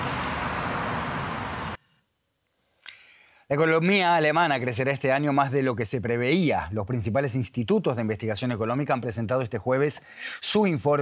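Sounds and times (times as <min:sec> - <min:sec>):
busy Buenos Aires street traffic roar: 0:00.0 - 0:01.8
speech: 0:03.5 - 0:10.9.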